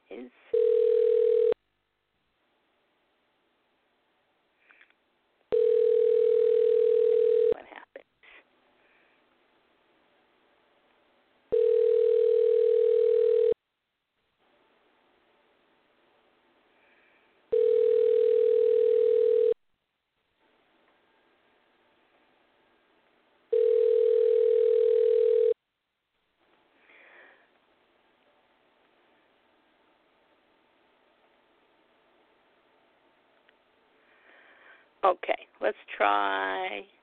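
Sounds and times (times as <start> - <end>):
telephone line tone after a number is dialed: 0.5 - 1.6, 5.5 - 7.6, 11.5 - 13.6, 17.5 - 19.6, 23.5 - 25.6
speech: 35.0 - 37.0.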